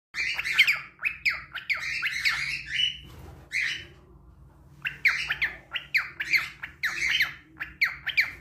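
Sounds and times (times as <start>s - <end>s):
cockatiel squawking chirps: 0.2s - 3.8s, 4.8s - 8.3s.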